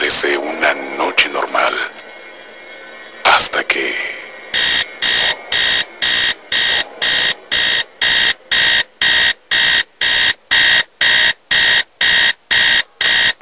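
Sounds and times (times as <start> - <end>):
speech: 0.1 - 2.0, 3.4 - 4.1
electronic alarm clock beeping in an old house: 4.5 - 13.4.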